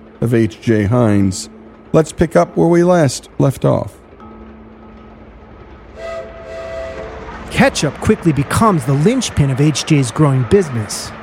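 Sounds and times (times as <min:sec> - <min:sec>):
train rumbling along railroad tracks: 0:00.0 - 0:11.2
speech: 0:00.2 - 0:04.0, 0:07.6 - 0:11.2
sustained train whistle tone: 0:05.9 - 0:08.2.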